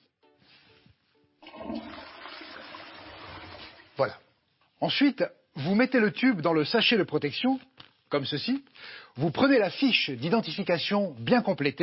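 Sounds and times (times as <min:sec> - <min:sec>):
toilet flushing away leftover of a home test sample: 0:01.4 - 0:04.1
speech: 0:04.0 - 0:04.2, 0:04.8 - 0:11.8.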